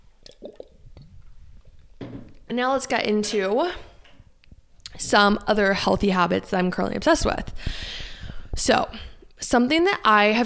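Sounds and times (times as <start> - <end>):
gulp: 0.2 - 1.1
sipping water: 0.2 - 1.8
speech: 2.5 - 3.9, 5.0 - 8.0, 8.6 - 10.4.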